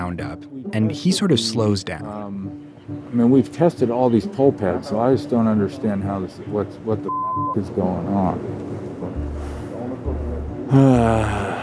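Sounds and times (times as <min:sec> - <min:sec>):
speech: 0:00.0 - 0:08.6, 0:10.7 - 0:11.6
man breathing heavily while running up stairs wearing a mask: 0:10.7 - 0:11.6.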